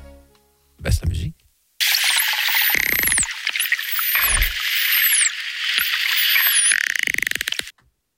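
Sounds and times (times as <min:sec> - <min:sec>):
dolphin whistles underwater: 0:01.8 - 0:07.7
rapid dolphin clicking underwater: 0:02.0 - 0:07.7.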